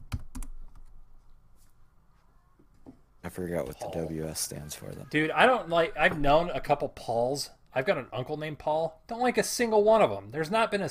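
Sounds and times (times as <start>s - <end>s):
typing on a computer keyboard: 0.0s - 0.9s
speech: 3.3s - 10.8s.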